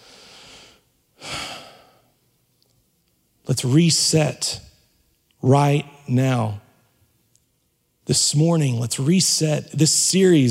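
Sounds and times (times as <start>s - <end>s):
deep breath in: 0.0s - 2.1s
speech: 3.5s - 4.7s, 5.4s - 6.6s, 8.1s - 10.4s.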